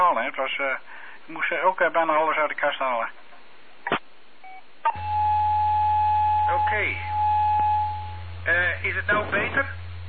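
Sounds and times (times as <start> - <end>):
speech: 0.0 - 3.2, 6.5 - 7.1, 8.4 - 9.8
beeping tones on a phone line: 4.4 - 8.3
low hum: 4.9 - 10.0.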